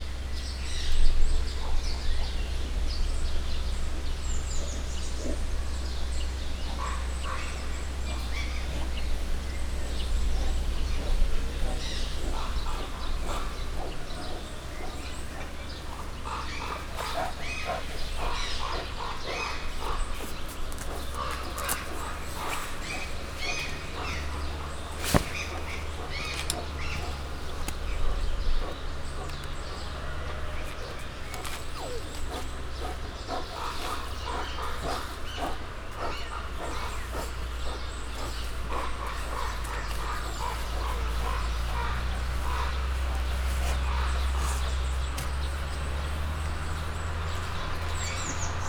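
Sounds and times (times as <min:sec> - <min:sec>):
brown bear in a zoo: 0:00.4 - 0:48.6.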